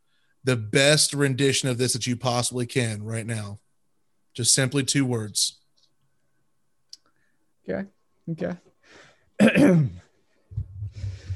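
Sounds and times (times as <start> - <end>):
speech: 0.4 - 3.6, 4.4 - 5.6, 7.7 - 10.0
person clearing their throat: 9.4 - 10.1.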